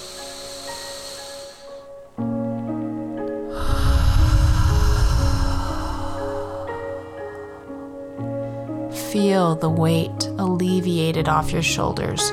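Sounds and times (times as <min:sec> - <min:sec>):
deep breath drawn in during a guided anger-release meditation: 0:00.0 - 0:02.0, 0:03.4 - 0:08.9
soft sustained music: 0:00.0 - 0:12.3
speech: 0:09.2 - 0:12.3.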